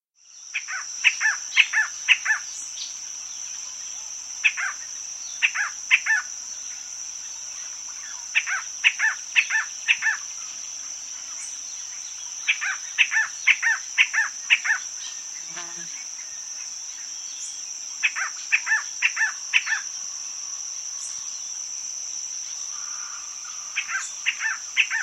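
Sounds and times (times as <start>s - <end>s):
Jet Antbird calling in South America: 0.5s - 2.6s, 4.4s - 6.9s, 7.5s - 10.6s, 11.2s - 16.3s, 17.4s - 21.3s, 22.6s - 25.0s.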